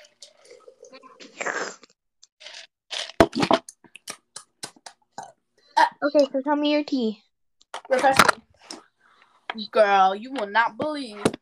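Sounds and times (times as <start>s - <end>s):
person slurping a drink: 0.9s - 3.7s
speech: 6.0s - 7.2s, 7.9s - 8.4s, 9.6s - 11.3s.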